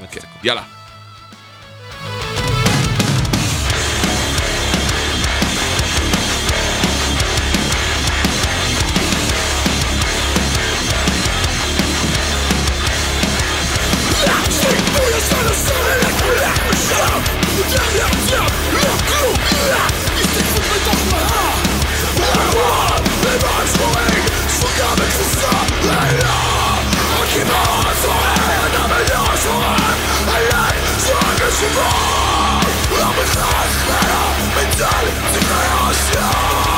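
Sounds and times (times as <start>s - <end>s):
distorted guitars in a hardcore punk song: 0.0s - 36.7s
speech: 0.1s - 0.8s
pounding drums in a hardcore punk song: 1.4s - 36.7s
raw shouted vocals in a hardcore punk song: 13.9s - 36.7s.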